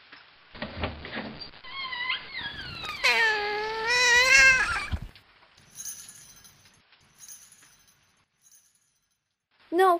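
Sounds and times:
cat meowing: 1.7s - 5.1s
faint clinking: 5.6s - 9.4s.

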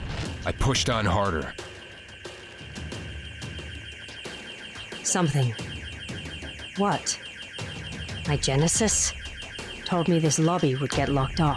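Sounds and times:
speech: 0.4s - 1.6s, 5.1s - 5.7s, 6.8s - 7.2s, 8.3s - 9.2s, 9.9s - 11.5s
shrill high-pitched security alarm ringing: 0.9s - 11.5s.

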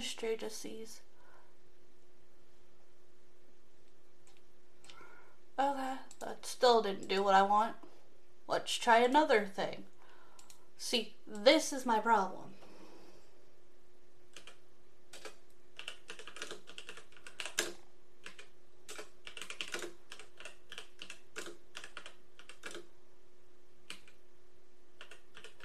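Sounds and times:
speech: 0.1s - 1.1s, 5.6s - 7.9s, 8.5s - 9.9s, 10.8s - 12.6s
typing on a computer keyboard: 14.3s - 22.9s, 23.8s - 24.2s, 25.0s - 25.6s.

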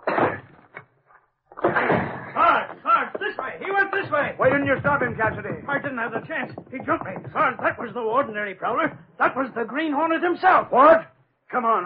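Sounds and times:
door being forced open with banging and scraping: 1.6s - 9.0s
faint knocks: 1.6s - 9.2s
speech: 4.2s - 11.8s.

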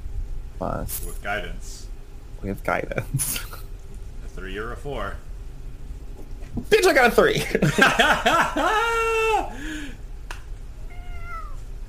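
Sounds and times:
low rumble: 0.0s - 11.8s
speech: 0.6s - 3.7s, 4.4s - 5.3s, 6.6s - 10.0s
laughter: 2.9s - 3.7s, 7.3s - 9.5s
cat meowing: 10.8s - 11.7s.

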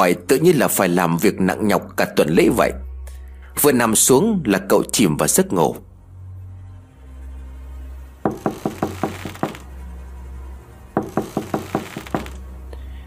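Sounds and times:
speech: 0.0s - 2.9s, 3.6s - 5.9s
knocking on a wooden door at night: 8.3s - 9.7s, 11.0s - 12.4s.

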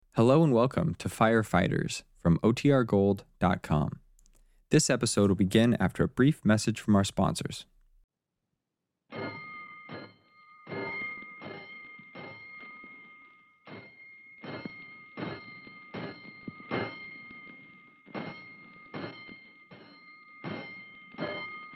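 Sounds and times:
speech: 0.2s - 4.0s, 4.7s - 7.7s
fire station alarm bell clanging: 9.1s - 21.7s.

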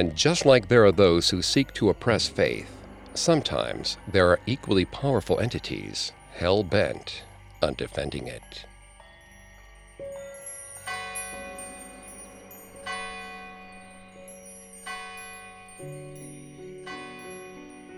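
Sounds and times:
speech: 0.0s - 8.7s
soft sustained low hum: 0.0s - 17.7s
metallic wind chimes outside a church moving in a light breeze: 0.0s - 17.9s.

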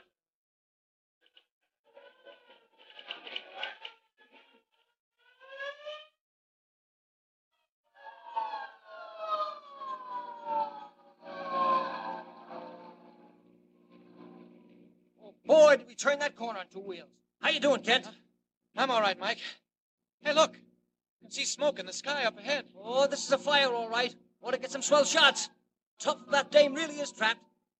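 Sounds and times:
hook-and-ladder fire engine siren wailing on a city street: 7.9s - 15.5s, 22.5s - 27.4s
speech: 16.0s - 19.6s, 20.3s - 20.6s, 21.3s - 27.5s.

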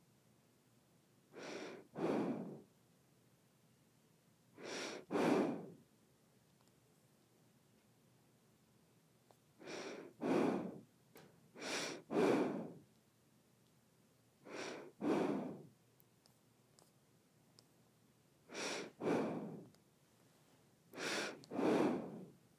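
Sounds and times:
person breathing through the nose: 1.4s - 2.7s, 4.6s - 5.8s, 9.6s - 10.9s, 11.6s - 12.8s, 14.4s - 15.7s, 18.5s - 19.8s, 21.0s - 22.4s.

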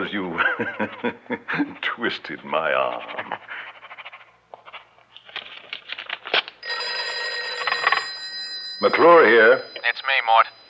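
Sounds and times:
speech: 0.0s - 3.7s, 8.8s - 10.6s
laughter: 0.3s - 1.9s
scattered rustling and tapping: 4.5s - 6.6s
old-fashioned telephone bell ringing: 6.6s - 10.6s.

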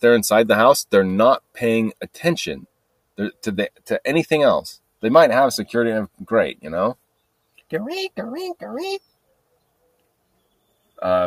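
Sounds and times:
speech: 0.0s - 7.0s, 7.7s - 9.1s, 11.0s - 11.2s
person imitating blackbird calls: 7.6s - 9.0s.

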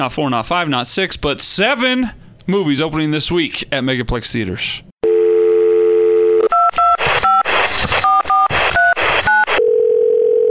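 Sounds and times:
speech: 0.0s - 4.9s
telephone dial tone: 5.0s - 7.0s, 9.3s - 10.5s
noisy phone line static: 5.0s - 10.5s.

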